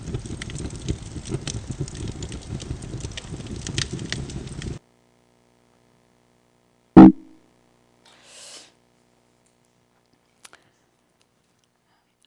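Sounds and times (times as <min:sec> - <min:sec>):
crackling fire: 0:00.0 - 0:04.8
loud sharp knock: 0:07.0 - 0:07.4.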